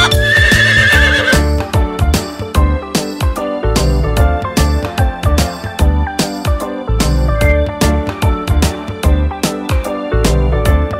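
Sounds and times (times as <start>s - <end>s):
horse whinnying with a shrill quavering neigh: 0.0s - 1.4s
bouncy steadily thumping music track: 0.0s - 10.9s.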